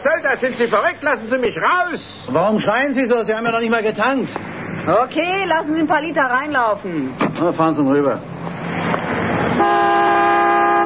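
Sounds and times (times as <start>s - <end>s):
speech: 0.0s - 8.3s
rushing noise: 0.0s - 10.8s
car horn blaring at a filling station: 9.5s - 10.8s.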